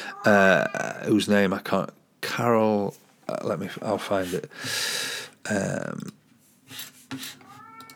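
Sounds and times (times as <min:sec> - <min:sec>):
cat meowing: 0:00.0 - 0:01.0, 0:07.4 - 0:07.9
speech: 0:00.2 - 0:07.4
scraping and rustling: 0:06.3 - 0:07.9.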